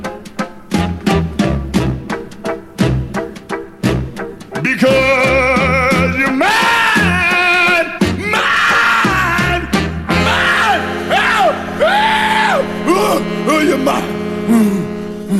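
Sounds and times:
rhythm and blues song with band: 0.0s - 15.3s
raw screamed male vocal: 4.8s - 15.3s.

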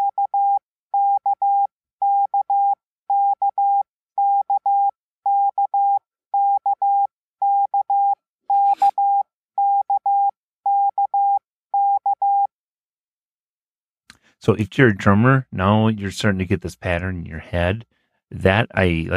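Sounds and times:
morse code tones: 0.0s - 12.5s
speech: 14.5s - 19.1s.

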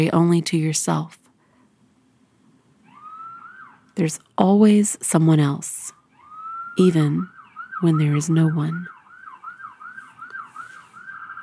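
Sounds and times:
speech: 0.0s - 1.2s, 4.0s - 5.8s, 6.8s - 9.0s
emergency vehicle siren yelping outside: 2.8s - 4.0s, 6.0s - 11.4s.

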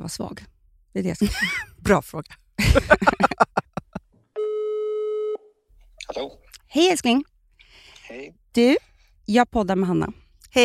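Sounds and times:
speech: 0.0s - 3.4s, 6.2s - 7.3s, 8.1s - 10.6s
laughter: 2.6s - 4.1s
telephone ringing tone on an outgoing call: 4.4s - 5.5s.

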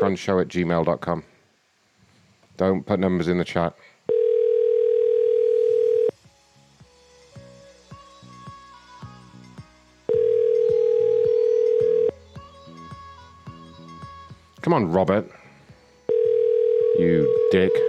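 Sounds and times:
speech: 0.0s - 1.3s, 2.6s - 3.9s, 14.7s - 15.4s, 17.0s - 17.8s
quiet tonal sounds: 4.0s - 17.8s
phone call ringback tone: 4.1s - 6.1s, 10.1s - 12.2s, 16.1s - 17.8s.

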